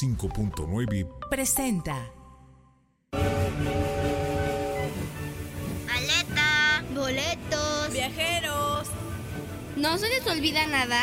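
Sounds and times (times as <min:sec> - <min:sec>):
speech: 0:00.0 - 0:02.2, 0:09.8 - 0:11.0
sustained horn-like tones: 0:03.2 - 0:06.6
departing train rumble: 0:03.2 - 0:10.9.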